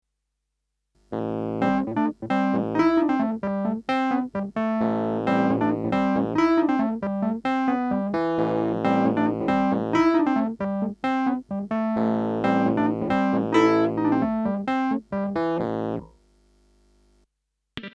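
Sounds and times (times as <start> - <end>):
dry funk keyboard: 1.1 - 16.1.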